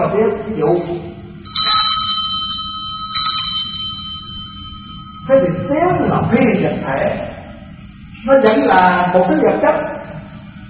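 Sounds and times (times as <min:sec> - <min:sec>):
low hum: 0:00.0 - 0:10.6
speech: 0:00.1 - 0:01.2, 0:05.3 - 0:07.3, 0:08.2 - 0:09.9
bell struck and ringing: 0:01.4 - 0:06.4.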